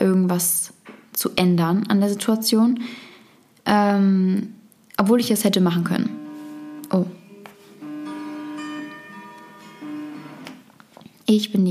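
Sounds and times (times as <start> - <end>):
speech: 0.3 - 3.1, 3.7 - 6.2, 6.9 - 7.2, 11.3 - 11.6
alarm clock going off with a faint steady electronic tone: 6.0 - 10.6.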